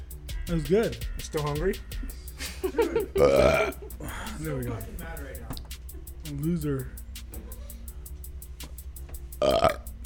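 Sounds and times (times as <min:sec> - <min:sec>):
speech: 0:00.5 - 0:05.5, 0:06.3 - 0:07.0, 0:09.4 - 0:09.8
laughter: 0:02.0 - 0:05.0
single loud guttural burp: 0:03.2 - 0:03.8, 0:09.4 - 0:09.9.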